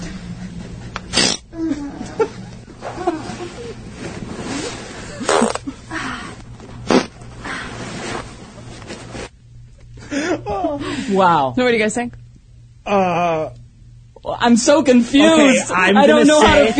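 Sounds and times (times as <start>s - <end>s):
low steady hum: 0.0s - 16.7s
short raspy fart sounds: 1.1s - 1.5s, 2.8s - 5.8s, 6.8s - 8.3s
speech: 11.1s - 12.2s, 12.9s - 13.6s, 14.2s - 16.7s.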